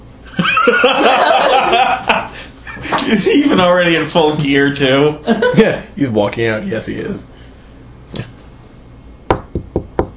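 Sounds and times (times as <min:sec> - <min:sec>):
laughter: 0:00.4 - 0:03.6, 0:05.2 - 0:05.9
speech: 0:00.7 - 0:01.2, 0:03.1 - 0:07.3
knocking on a wooden tent frame: 0:09.3 - 0:10.1.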